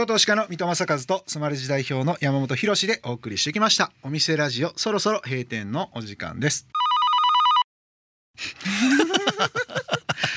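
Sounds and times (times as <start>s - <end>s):
speech: 0.0s - 6.9s, 8.4s - 10.0s
electronic telephone ring before an answering machine message: 6.8s - 7.7s
people breaking into rhythmic laughter: 8.6s - 10.3s.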